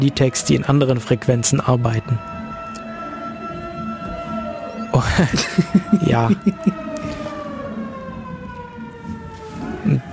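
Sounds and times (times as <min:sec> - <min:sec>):
speech: 0:00.0 - 0:02.4, 0:05.0 - 0:06.9
siren wailing outdoors: 0:02.2 - 0:10.1
laughter: 0:04.9 - 0:06.9.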